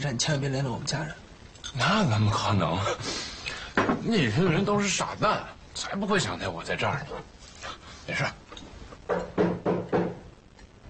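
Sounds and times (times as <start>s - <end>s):
speech: 0.0s - 3.3s, 4.0s - 7.4s, 8.1s - 8.4s
firm knocking on a door: 3.8s - 4.1s, 9.1s - 10.3s.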